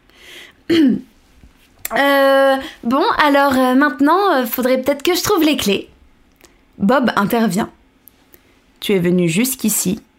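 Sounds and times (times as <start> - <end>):
forceful throat clearing: 0.7 - 1.1
speech: 0.7 - 1.1, 1.9 - 5.9, 6.8 - 7.8, 8.8 - 10.1.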